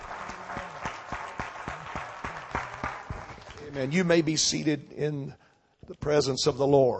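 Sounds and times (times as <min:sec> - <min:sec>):
audience applauding with steady hand clapping: 0:00.0 - 0:04.3
speech: 0:03.8 - 0:06.9.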